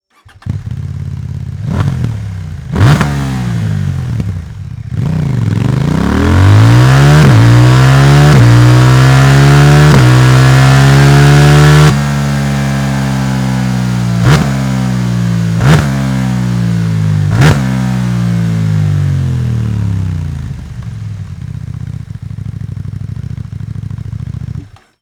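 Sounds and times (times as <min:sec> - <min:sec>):
CF Moto 800 NK motorcycle with Akrapovic slip-on exhaust: 0:00.1 - 0:25.0.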